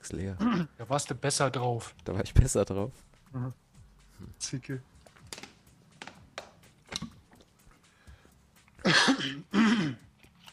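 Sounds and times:
speech: 0:00.1 - 0:03.6, 0:04.2 - 0:04.9, 0:09.2 - 0:10.0
person coughing into a microphone: 0:08.8 - 0:10.1.

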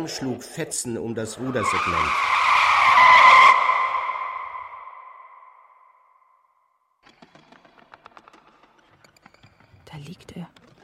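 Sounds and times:
speech: 0:00.0 - 0:02.5
car tires skidding on asphalt: 0:01.2 - 0:05.6.

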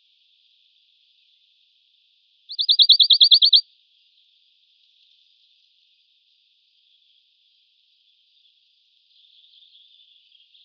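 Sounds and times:
Western Bonelli's warbler high-pitched trill: 0:02.5 - 0:03.6.

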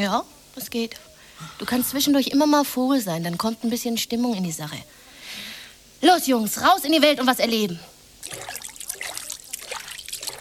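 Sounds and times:
speech: 0:00.0 - 0:08.5
Orinoco River water flowing, radio play effect: 0:08.2 - 0:10.3.

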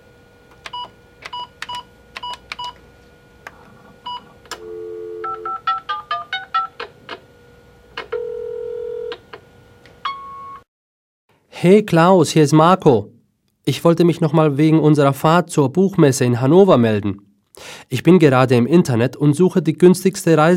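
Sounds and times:
telephone keypad dialing tones: 0:00.6 - 0:02.8, 0:04.1 - 0:06.9
longer steady telephone tone: 0:04.0 - 0:05.6
speech: 0:11.6 - 0:17.3, 0:17.9 - 0:20.5.

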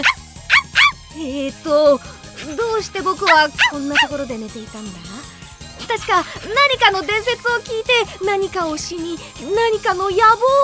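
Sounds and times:
puppy yapping outdoors: 0:00.0 - 0:01.0, 0:03.1 - 0:04.2
speech: 0:01.5 - 0:10.6.

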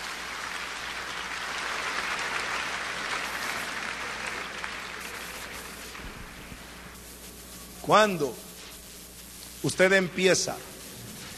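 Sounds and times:
church congregation applauding: 0:00.0 - 0:06.9
speech: 0:07.9 - 0:08.4, 0:09.6 - 0:10.7.

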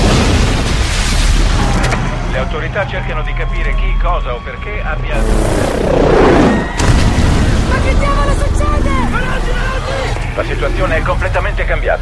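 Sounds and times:
loud deep explosion boom with rumbling roar: 0:00.0 - 0:02.2, 0:05.1 - 0:09.2
speech: 0:02.6 - 0:06.8, 0:07.7 - 0:11.9
sweeping descending tone like an incoming projectile: 0:05.1 - 0:07.5.

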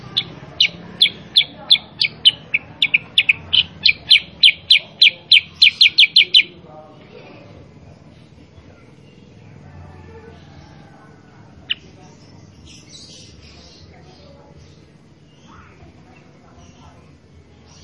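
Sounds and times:
Sooty-headed bulbul singing clipped bright chirps: 0:00.0 - 0:06.6, 0:11.6 - 0:15.8.

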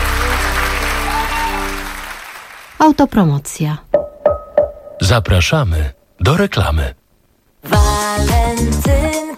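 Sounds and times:
audience applause at a live event: 0:00.0 - 0:02.8
speech: 0:02.8 - 0:03.9, 0:05.0 - 0:07.0, 0:07.6 - 0:09.2.

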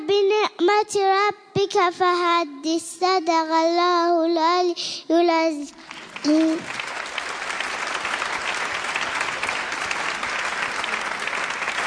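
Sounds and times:
speech: 0:00.8 - 0:06.9
audience applause at a Quran recitation event: 0:05.9 - 0:11.8.

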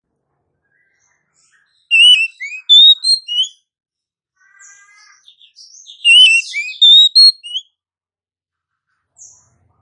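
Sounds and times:
female Oriental magpie-robin calls with whistled notes, used as a lure: 0:01.9 - 0:03.6, 0:05.4 - 0:07.6.

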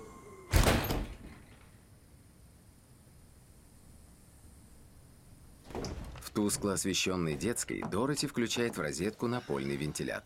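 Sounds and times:
front door swinging shut in the wind: 0:05.6 - 0:06.7
speech: 0:06.4 - 0:10.2.

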